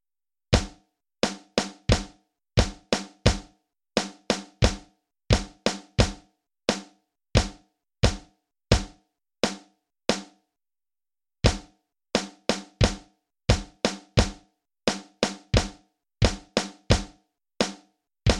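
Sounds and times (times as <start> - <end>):
drums warm-up: 0.5 - 2.1, 2.6 - 8.9, 11.5 - 17.1, 17.6 - 18.3.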